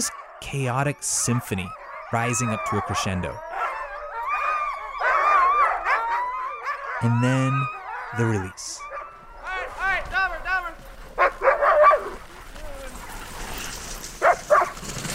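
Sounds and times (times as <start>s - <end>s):
speech: 0.0s - 3.5s, 7.0s - 8.9s
sled dogs whining high-pitched: 0.0s - 9.8s, 11.2s - 13.1s
excited sled dogs barking, yelping and howling: 0.0s - 13.1s, 14.2s - 14.8s.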